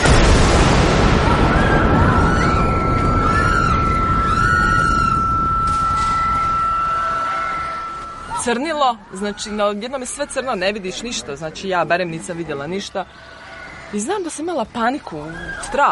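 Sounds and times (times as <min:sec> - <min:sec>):
grenade explosion in a wartime city: 0:00.0 - 0:08.0
speech: 0:08.5 - 0:15.9.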